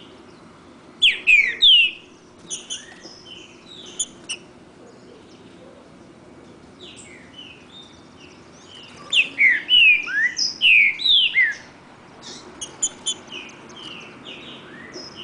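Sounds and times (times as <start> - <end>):
second free-living bird singing in a song contest: 0.0 - 5.6, 6.8 - 15.2
wild green-winged saltator singing in the woods: 1.0 - 4.4, 6.9 - 15.2.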